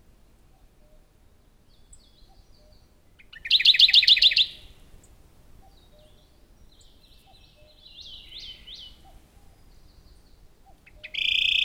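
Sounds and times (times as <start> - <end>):
Radde's warbler Phylloscopus schwarzi song trill: 1.7 - 4.8, 5.6 - 11.6.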